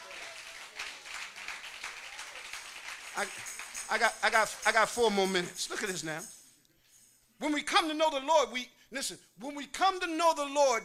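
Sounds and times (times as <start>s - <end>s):
audience hand clapping: 0.0s - 5.0s
speech: 3.2s - 6.4s, 7.4s - 10.8s.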